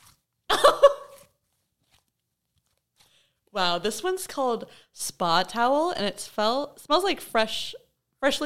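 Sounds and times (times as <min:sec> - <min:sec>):
crackly squelchy crunching of icy slime: 0:00.0 - 0:04.0
speech: 0:03.6 - 0:08.4.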